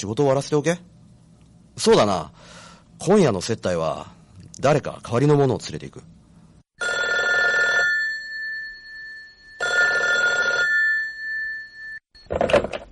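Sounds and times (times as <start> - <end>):
speech: 0.0 - 0.9, 1.8 - 6.2
telephone ringing: 6.8 - 12.7.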